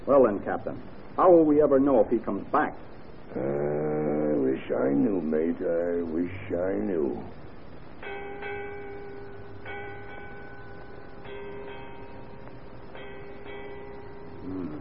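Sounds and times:
low hum: 0.0s - 14.7s
speech: 0.1s - 3.9s, 4.7s - 7.4s
ship's bell striking eight bells: 7.9s - 14.5s.

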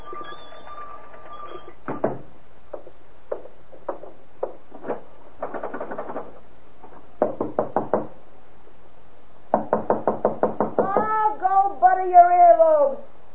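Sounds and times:
sharp knocking on a door: 1.8s - 4.6s, 7.2s - 8.2s, 9.5s - 11.2s
person calling out: 10.8s - 13.1s.

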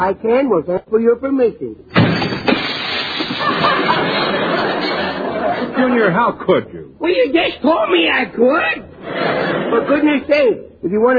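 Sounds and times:
speech: 0.0s - 2.4s, 3.5s - 11.1s
door slamming: 1.9s - 3.8s
newly fitted glass pane in a door shattering: 1.9s - 4.0s
laughter: 3.3s - 6.2s, 9.0s - 10.3s.

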